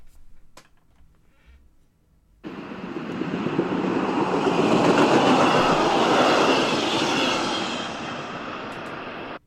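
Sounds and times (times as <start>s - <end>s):
train passing by: 2.4s - 9.4s.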